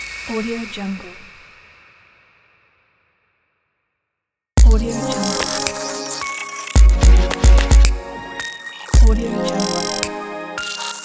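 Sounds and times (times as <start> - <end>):
ambient glitch logo sound: 4.7 - 10.0.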